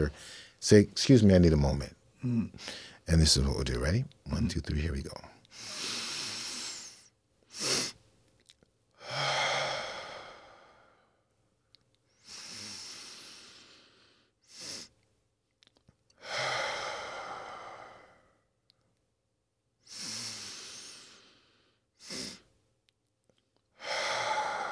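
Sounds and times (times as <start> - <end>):
slow deep breaths in a guided breathing exercise: 0.0 - 0.6, 2.2 - 3.0, 8.9 - 11.3, 12.1 - 15.0, 16.1 - 18.6, 19.8 - 22.5, 23.7 - 24.7
speech: 0.0 - 6.0.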